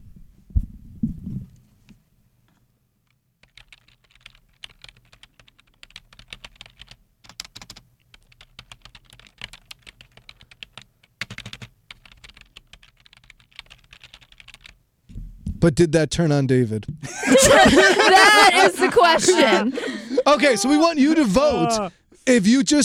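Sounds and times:
computer keyboard tapping: 3.4s - 14.8s
low thumps: 15.1s - 16.0s
speech: 15.6s - 22.8s
laughter: 17.0s - 22.0s.

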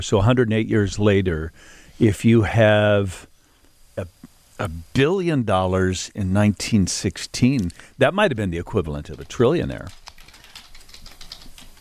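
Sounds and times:
speech: 0.0s - 3.3s, 4.0s - 10.0s
computer keyboard clicking: 9.2s - 11.7s.

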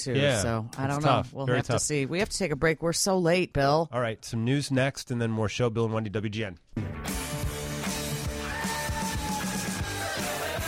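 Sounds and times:
speech: 0.0s - 7.2s
loud busy music of a radio show bumper: 6.8s - 10.6s
person screaming or yelling: 8.4s - 10.4s.

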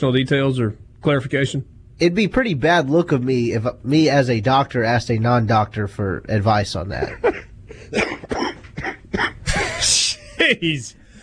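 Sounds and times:
speech: 0.0s - 8.4s, 9.2s - 11.0s
cough-laugh: 7.0s - 10.5s.

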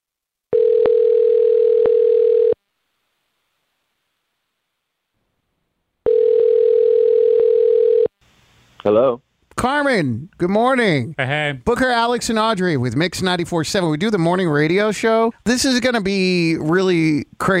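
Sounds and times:
telephone line tone while a call is being placed: 0.5s - 2.6s, 6.0s - 8.1s
speech: 8.8s - 17.5s.

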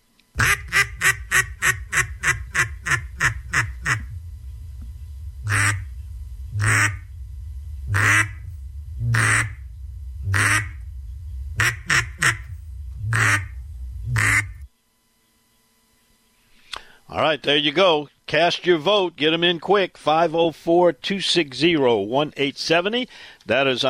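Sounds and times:
duck call blown as a duck-calling contest routine: 0.4s - 4.1s, 5.5s - 5.9s, 6.6s - 7.0s, 7.9s - 8.4s, 9.1s - 9.6s, 10.3s - 10.8s, 11.6s - 12.5s, 13.1s - 13.5s, 14.2s - 14.6s
speech: 17.2s - 23.8s.

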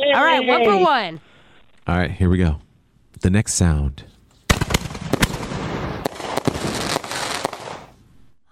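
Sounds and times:
speech: 0.2s - 1.3s, 1.9s - 4.1s
firework mortar shell crackling spray of sharp pops and snaps: 4.5s - 8.0s.

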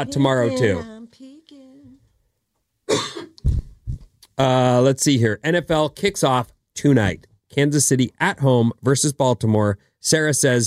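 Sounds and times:
speech: 0.0s - 0.9s, 4.4s - 10.6s
harsh coughs: 2.9s - 3.4s.

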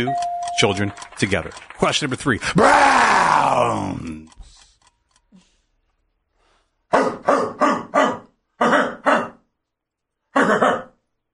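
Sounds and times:
speech: 0.0s - 4.4s
dog barking: 6.9s - 9.4s.

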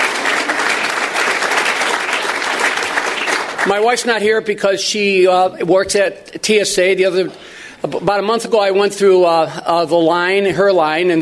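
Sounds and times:
room full of people applauding: 0.0s - 3.9s
speech: 3.7s - 11.2s.

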